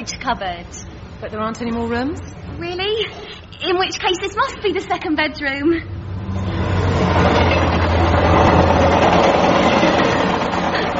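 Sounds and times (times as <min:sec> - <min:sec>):
speech: 0:00.0 - 0:06.4
train rumbling past on main line: 0:00.0 - 0:10.9
low drone: 0:05.8 - 0:10.9.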